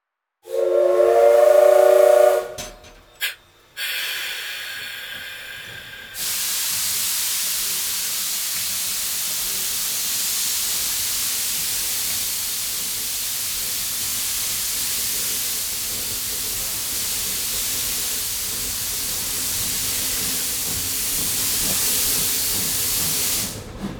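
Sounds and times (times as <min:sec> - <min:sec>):
steam train whistle blowing as the train departs: 0:00.4 - 0:08.5
hissing steam from a departing steam train: 0:00.5 - 0:23.9.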